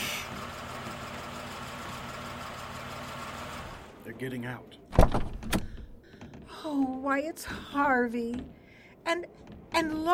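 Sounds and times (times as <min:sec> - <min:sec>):
car engine idling while turning into a house driveway: 0:00.0 - 0:04.6
speech: 0:04.1 - 0:05.3, 0:06.6 - 0:10.1.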